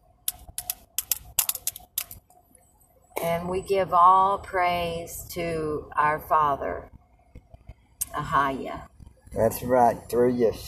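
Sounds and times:
two pencils tapped like drums: 0.3 - 2.2
speech: 3.2 - 6.9, 8.2 - 10.6.

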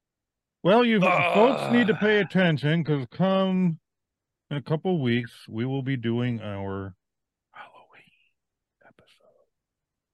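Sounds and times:
speech: 0.6 - 3.8, 4.5 - 7.0
person whispering close to the microphone: 7.6 - 9.5.

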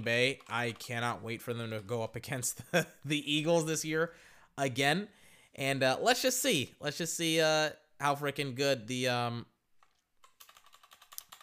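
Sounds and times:
speech: 0.0 - 9.5
rapid typing on a plastic computer keyboard: 0.2 - 1.1, 9.8 - 11.4.

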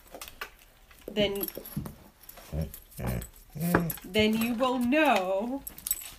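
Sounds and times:
speech: 1.2 - 5.8
dog barking and whimpering: 2.4 - 4.3.

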